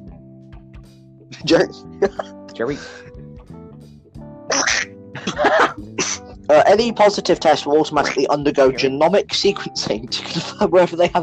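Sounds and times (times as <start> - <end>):
speech: 1.4 - 3.2, 5.2 - 11.2
person coughing: 2.0 - 3.0, 4.5 - 6.3.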